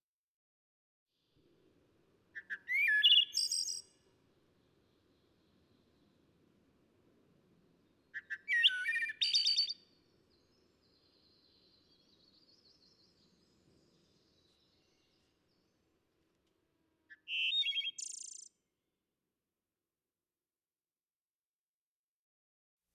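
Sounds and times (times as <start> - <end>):
bird trilling song: 2.4 - 4.0, 7.8 - 15.7, 17.1 - 18.6.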